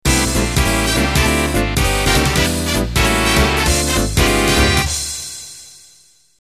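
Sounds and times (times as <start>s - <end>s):
quickstep dance music intro: 0.1s - 5.6s.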